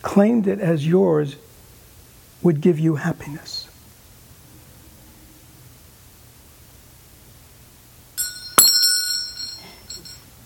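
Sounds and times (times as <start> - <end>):
speech: 0.1 - 1.5, 2.4 - 3.7
small metal bell struck sharply: 8.2 - 10.3.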